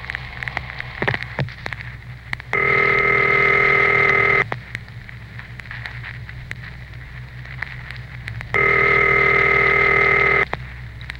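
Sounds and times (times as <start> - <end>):
constant crackly hiss: 0.0 - 11.1
telephone ringing with a steady buzzing tone: 2.6 - 4.4, 8.6 - 10.5.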